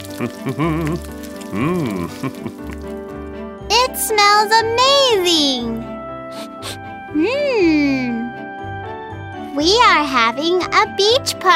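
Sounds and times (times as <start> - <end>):
food sizzling and crackling in a pan: 0.0 - 3.1
person singing or humming: 0.2 - 2.4
speech: 0.2 - 3.1, 3.7 - 6.4, 7.1 - 8.3, 9.6 - 11.5.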